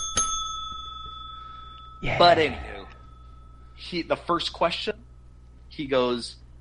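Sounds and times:
bright metallic bell ding: 0:00.0 - 0:03.8
low hum: 0:00.0 - 0:06.5
speech: 0:02.0 - 0:02.7, 0:03.8 - 0:05.0, 0:05.8 - 0:06.4.

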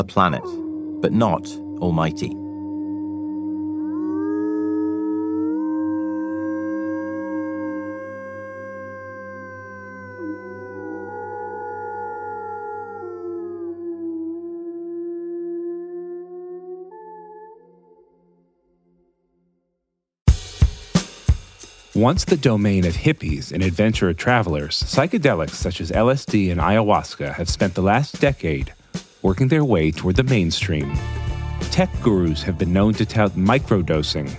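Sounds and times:
speech: 0:00.0 - 0:02.4, 0:22.0 - 0:34.3
wolves howling together: 0:00.0 - 0:18.2.

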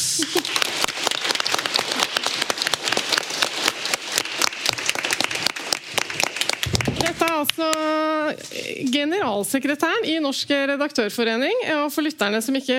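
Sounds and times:
audience applause: 0:00.0 - 0:07.8
speech: 0:07.4 - 0:12.7.

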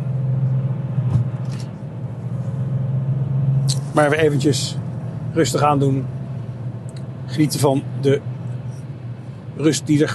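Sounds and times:
older vintage car engine drone: 0:00.0 - 0:10.1
road rumble of a vintage car: 0:00.0 - 0:10.1
thump: 0:01.1 - 0:01.4
speech: 0:04.0 - 0:06.2, 0:07.3 - 0:08.3, 0:09.6 - 0:10.1.

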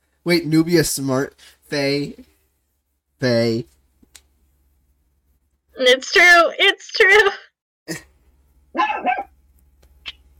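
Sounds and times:
faint low steady hum: 0:00.0 - 0:10.3
speech: 0:00.2 - 0:02.3, 0:03.2 - 0:03.8, 0:05.8 - 0:08.1, 0:08.8 - 0:09.3
dog barking: 0:08.8 - 0:09.3.

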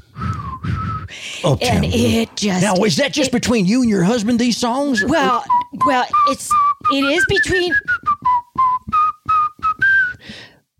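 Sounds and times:
person whistling a bright pop melody: 0:00.1 - 0:01.1, 0:04.9 - 0:10.6
speech: 0:01.4 - 0:07.9.

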